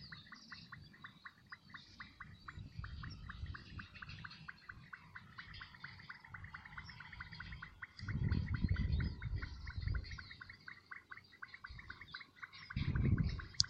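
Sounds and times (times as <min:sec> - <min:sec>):
Leptodactylus gracilis slender thin-toed frog calling in Saladillo, Buenos Aires, Argentina: 0:00.0 - 0:13.6.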